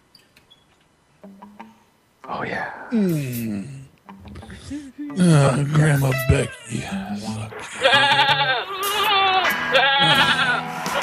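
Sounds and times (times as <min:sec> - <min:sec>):
speech: 0:02.3 - 0:03.8, 0:04.7 - 0:08.6
sheep bleating: 0:04.3 - 0:11.0.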